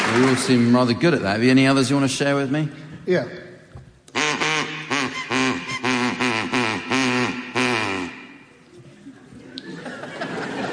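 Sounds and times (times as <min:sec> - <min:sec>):
speech: 0:00.1 - 0:03.5
person imitating duck quacks: 0:04.1 - 0:08.5
laughter: 0:08.7 - 0:10.7.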